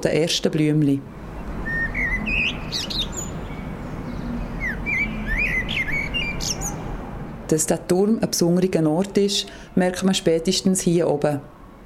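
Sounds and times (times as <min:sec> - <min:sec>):
speech: 0:00.0 - 0:01.2, 0:02.3 - 0:03.1, 0:07.5 - 0:11.5
bird singing whistled chirps and trills in spring: 0:01.6 - 0:06.8.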